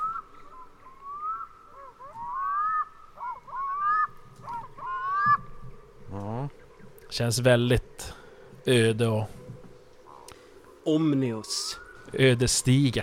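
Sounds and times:
seabird crying in light fog over water: 0:00.0 - 0:06.9
speech: 0:07.2 - 0:07.8, 0:08.7 - 0:09.4, 0:10.8 - 0:13.0.

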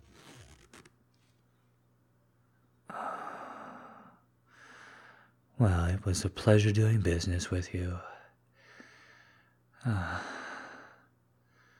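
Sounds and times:
zipper being zipped up: 0:00.0 - 0:00.9
speech: 0:05.6 - 0:08.1, 0:09.8 - 0:10.2.

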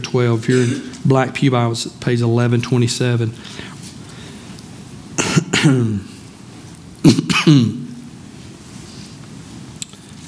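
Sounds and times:
speech: 0:00.0 - 0:03.8, 0:05.6 - 0:06.1, 0:07.0 - 0:07.8
held-back coughs: 0:00.5 - 0:01.0, 0:05.2 - 0:06.1, 0:07.0 - 0:07.9
throat clearing: 0:00.5 - 0:01.0, 0:05.2 - 0:06.1, 0:07.0 - 0:08.0.

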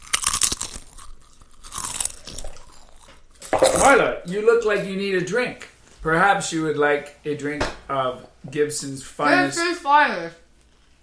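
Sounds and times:
woman eating crunchy chips: 0:00.0 - 0:04.0
speech: 0:03.7 - 0:10.4.

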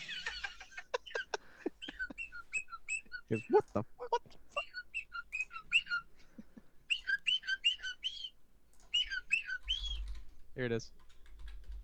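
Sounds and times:
laughter: 0:00.0 - 0:04.8, 0:06.0 - 0:06.7
parrot whistling sliding warbling notes: 0:01.8 - 0:03.6, 0:04.6 - 0:06.1, 0:06.9 - 0:10.1
speech: 0:03.3 - 0:04.0, 0:10.6 - 0:11.0.

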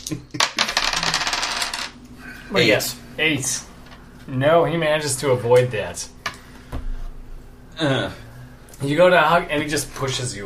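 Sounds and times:
speech: 0:00.1 - 0:00.4, 0:02.5 - 0:03.7, 0:04.3 - 0:06.2, 0:07.8 - 0:08.2, 0:08.8 - 0:10.4
dice rolling on a table: 0:00.4 - 0:02.0.

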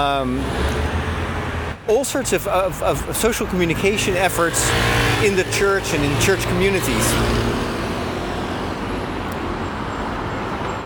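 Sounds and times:
speech: 0:00.0 - 0:01.1, 0:01.9 - 0:07.7
bus passing: 0:00.0 - 0:10.8
street traffic roar at a traffic light: 0:00.0 - 0:10.8.

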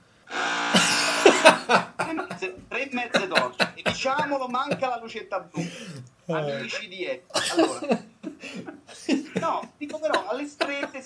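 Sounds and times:
chainsaw starting up and revving: 0:00.3 - 0:01.4
laughter: 0:00.7 - 0:05.0, 0:07.4 - 0:11.0
speech: 0:03.0 - 0:11.0.

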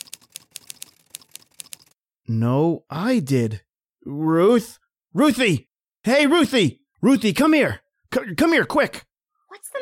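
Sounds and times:
typewriter keys clacking: 0:00.0 - 0:02.0
speech: 0:02.3 - 0:09.8.

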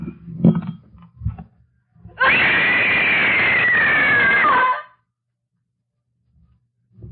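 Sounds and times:
woman screaming in rage: 0:02.2 - 0:05.0.

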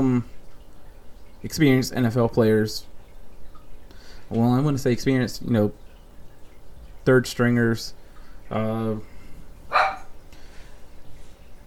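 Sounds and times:
speech: 0:01.4 - 0:02.9, 0:04.3 - 0:05.8, 0:07.1 - 0:09.1
small dog yapping: 0:09.7 - 0:10.1.

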